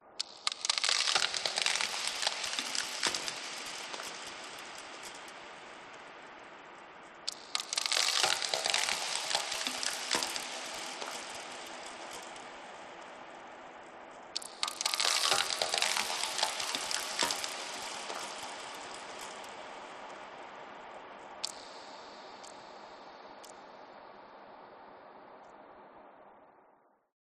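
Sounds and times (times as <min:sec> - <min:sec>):
designed ice sounds: 0:00.2 - 0:05.0, 0:07.3 - 0:12.6, 0:14.4 - 0:19.5.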